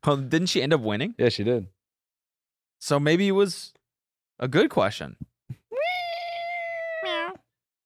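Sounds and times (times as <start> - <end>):
speech: 0.0 - 1.8, 2.8 - 3.8, 4.4 - 5.3
person imitating a cat meow: 5.7 - 7.5.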